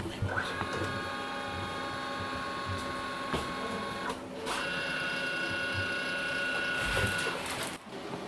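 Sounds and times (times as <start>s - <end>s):
printer printing letters: 0.0s - 8.2s.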